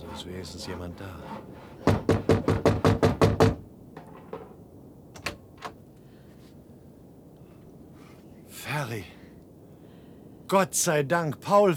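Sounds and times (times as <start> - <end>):
speech: 0.1 - 1.7, 10.5 - 11.7
knocking on a wooden hut door: 1.8 - 3.6.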